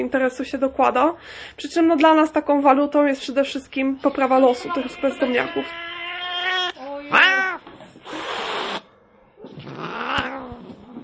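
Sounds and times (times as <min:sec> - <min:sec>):
speech: 0:00.0 - 0:05.9
cat yowling growls: 0:05.3 - 0:08.2, 0:09.4 - 0:11.0
cat giving harsh threatening hisses: 0:05.3 - 0:11.0.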